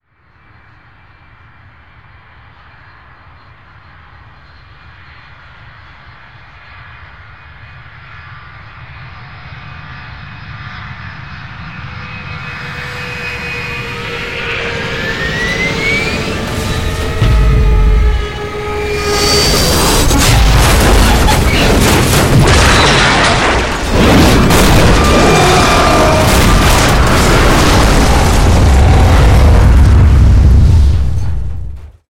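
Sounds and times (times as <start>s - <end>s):
rough crash at an airport: 12.5s - 32.0s.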